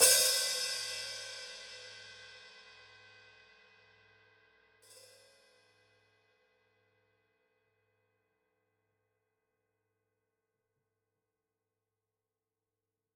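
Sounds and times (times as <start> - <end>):
open hi-hat of a Gretsch drum kit: 0.0 - 2.6.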